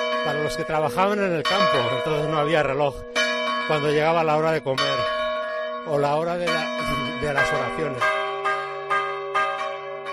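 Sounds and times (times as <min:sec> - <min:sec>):
church bells ringing: 0:00.0 - 0:10.1
speech: 0:00.2 - 0:05.2, 0:05.8 - 0:08.2.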